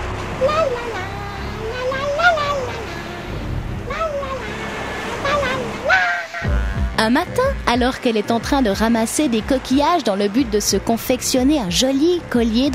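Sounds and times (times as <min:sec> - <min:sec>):
big sea wave crashing: 0:00.0 - 0:06.7
gliding voice-like tones: 0:00.4 - 0:06.8
speech: 0:07.0 - 0:12.7.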